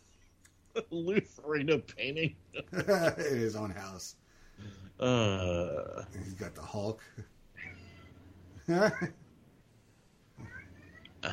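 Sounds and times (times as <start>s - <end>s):
speech: 0.8s - 7.8s, 8.7s - 9.2s
pet cat meowing: 10.4s - 11.3s.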